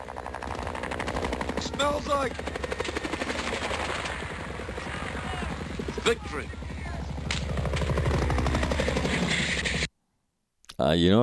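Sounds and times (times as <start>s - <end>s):
helicopter rotor noise: 0.0s - 9.9s
speech: 1.6s - 3.0s, 6.0s - 6.6s, 10.8s - 11.2s.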